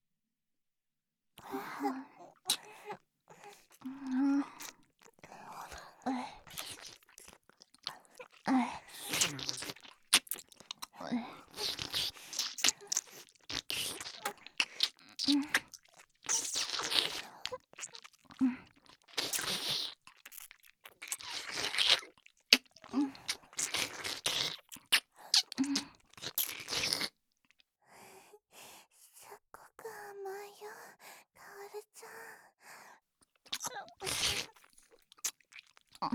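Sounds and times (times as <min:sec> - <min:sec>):
wet mouth sounds: 0:01.4 - 0:27.2, 0:33.2 - 0:36.1
person chewing and crunching chocolate: 0:01.4 - 0:27.6, 0:33.2 - 0:36.1
breathing: 0:27.8 - 0:29.3, 0:30.7 - 0:33.0.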